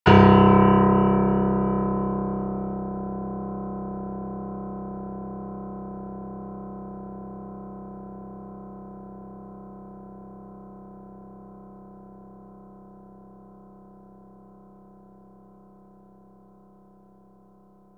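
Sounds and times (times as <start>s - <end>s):
piano tones: 0.1s - 6.1s.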